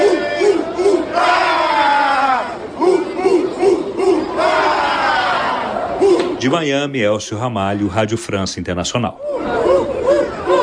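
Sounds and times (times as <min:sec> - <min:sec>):
large crowd of football fans chanting and cheering: 0:00.0 - 0:06.5, 0:09.2 - 0:10.6
speech: 0:06.4 - 0:09.6.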